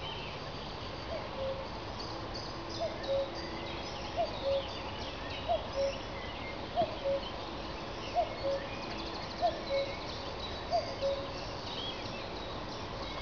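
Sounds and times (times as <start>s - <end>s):
birds: 0.0s - 13.2s
cuckoo calling: 1.1s - 1.7s, 2.8s - 3.4s, 4.0s - 4.8s, 5.4s - 6.1s, 6.8s - 7.4s, 8.1s - 10.1s, 10.7s - 11.4s.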